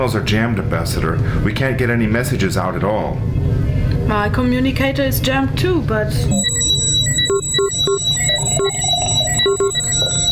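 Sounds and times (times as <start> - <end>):
speech: 0.0 - 6.6, 7.3 - 10.3
constant dense electrical hum and buzz: 5.7 - 10.3
rapid electronic beeps from an automatic telephone dialing mechanism: 6.3 - 10.3.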